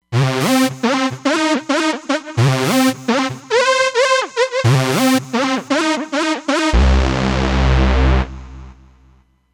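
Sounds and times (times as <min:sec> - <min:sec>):
legato techno synth: 0:00.1 - 0:09.2.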